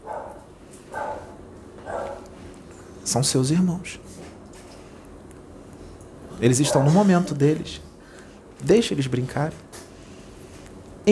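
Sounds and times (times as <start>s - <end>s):
dogs barking: 0.0s - 2.4s, 6.4s - 7.5s
steady low hum: 0.0s - 11.1s
speech: 3.1s - 4.2s, 6.4s - 7.9s, 8.6s - 9.6s.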